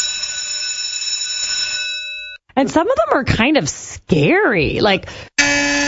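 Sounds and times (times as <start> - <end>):
school recess bell ringing: 0.0 - 2.4
speech: 2.6 - 5.7.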